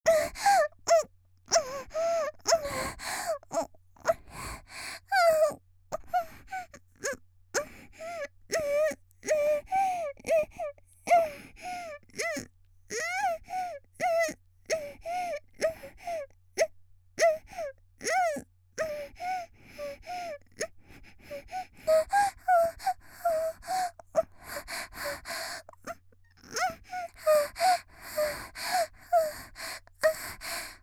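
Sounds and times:
girl panting with a hushed voice: 0.0s - 12.4s, 13.2s - 16.3s, 17.2s - 30.8s.

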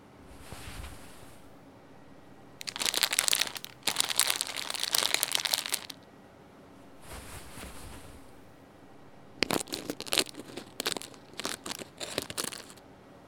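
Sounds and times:
plastic bag of baking soda torn open: 2.6s - 6.0s, 9.4s - 12.8s.

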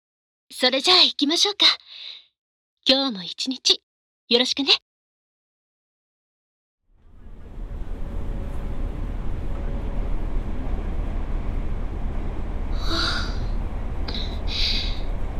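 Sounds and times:
speech: 0.5s - 2.2s, 2.9s - 4.9s
crowded morning commuter train rumbling inside a carriage: 6.9s - 15.3s.

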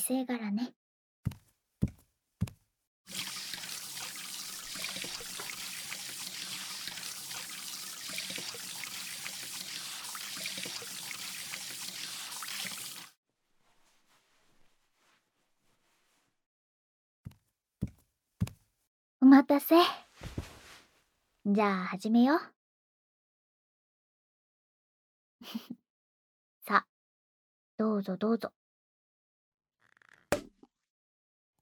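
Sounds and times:
speech: 0.0s - 1.4s, 19.4s - 20.0s, 21.5s - 22.6s, 25.5s - 25.8s, 26.7s - 26.9s, 27.8s - 28.6s
hands washed under running tap water at a washbasin: 3.1s - 13.2s.

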